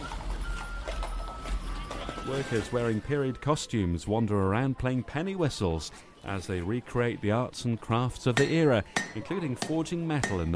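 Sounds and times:
horse-drawn carriage clip-clopping along a street in a historic town centre: 0.0 - 3.0
constant fairly loud noise: 0.0 - 10.5
speech: 2.3 - 10.5.

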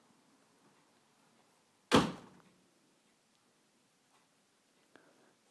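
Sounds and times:
door blown shut by the wind slamming: 1.9 - 2.4.

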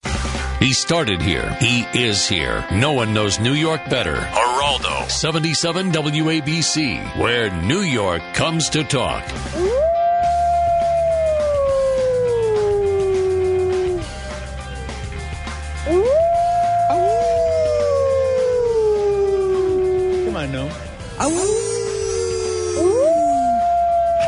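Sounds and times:
low rhythmic bed: 0.2 - 24.2
speech: 0.6 - 9.9
coyotes howling: 9.5 - 14.5, 15.8 - 24.2.

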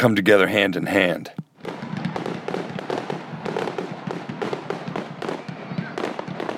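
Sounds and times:
speech: 0.0 - 1.8
neighborhood show fireworks crackling and banging with rumbling echo: 1.4 - 6.5.

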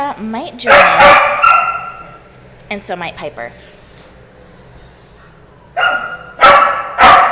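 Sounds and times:
speech: 0.2 - 1.5, 2.7 - 3.8
harsh full dog barks: 0.6 - 2.1, 5.8 - 7.2
high shrill drawn-out dog yelp: 0.7 - 2.0, 3.6 - 7.2.

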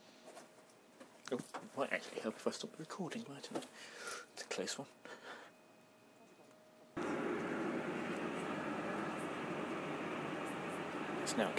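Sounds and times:
faint electrical hum: 0.0 - 11.5
speech: 1.3 - 5.2, 11.4 - 11.5
train approaching a station: 7.0 - 11.5.

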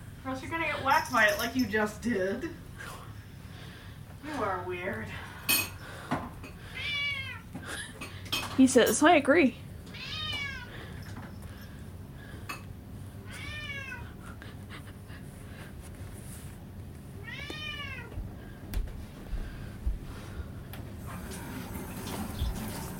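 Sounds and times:
steady low hum: 0.0 - 22.9
speech: 0.2 - 3.0, 4.2 - 5.3, 8.6 - 9.6
male cat meowing: 6.7 - 7.4, 9.9 - 10.7, 13.2 - 14.2, 17.2 - 18.2.

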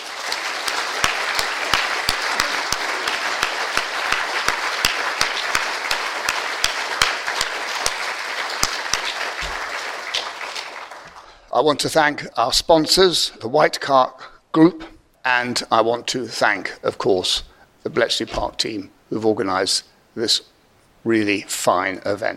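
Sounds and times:
audience applause for speakers after a day of presentations: 0.0 - 11.4
speech: 11.6 - 22.3.

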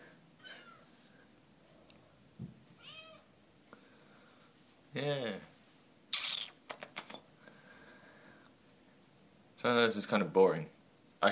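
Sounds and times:
female cat meowing while trying to claw someone: 2.8 - 3.3
speech: 5.0 - 5.5, 9.6 - 11.3.

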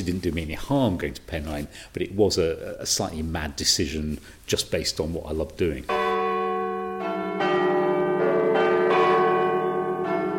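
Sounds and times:
speech: 0.0 - 6.2
city hall clock tower bell chimes: 5.9 - 10.3.

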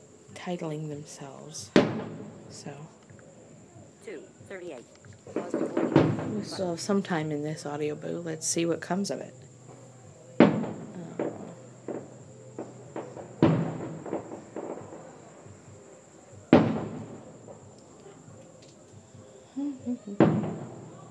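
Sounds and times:
fireworks booming bursts outdoors in the desert in hot weather: 0.0 - 3.5, 5.2 - 8.2, 9.2 - 18.4, 20.2 - 21.0
fireworks popping and crackling outdoors in the desert: 0.0 - 3.5, 4.8 - 19.0, 20.2 - 21.0
faint steady high whine: 0.0 - 21.0
speech: 0.4 - 3.0, 4.0 - 9.5.

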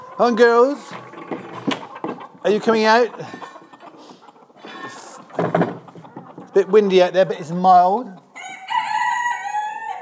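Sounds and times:
speech: 0.2 - 1.4, 2.4 - 3.4, 6.6 - 8.2
young rooster crowing in the main hen house: 8.4 - 9.9.

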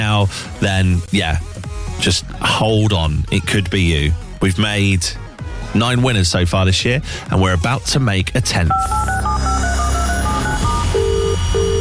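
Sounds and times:
speech: 0.1 - 9.1
steady electronic telephone ringing tone: 8.7 - 11.8
telephone keypad beeps: 8.7 - 11.8.

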